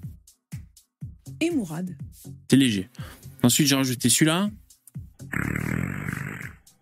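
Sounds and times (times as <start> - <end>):
speech: 1.4 - 4.6
fart sound effect with randomized pitch: 5.3 - 6.6.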